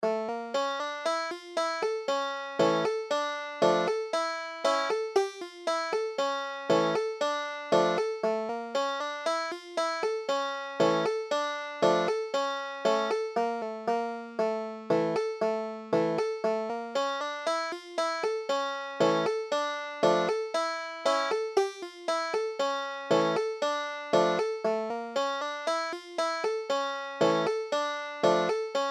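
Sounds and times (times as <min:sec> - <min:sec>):
Klezmer banjo music: 0:00.0 - 0:28.8.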